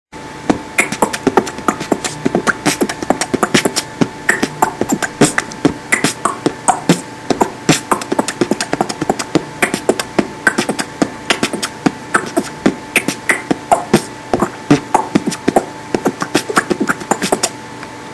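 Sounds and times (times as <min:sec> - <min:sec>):
beatbox beat: 0:00.4 - 0:17.6.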